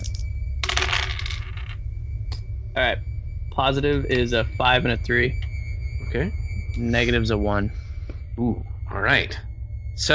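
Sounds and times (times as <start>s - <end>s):
dice clattering and tumbling across a hard surface: 0.0s - 1.8s
low steady hum: 0.0s - 10.1s
speech: 2.8s - 5.5s, 6.1s - 7.8s, 8.4s - 10.1s.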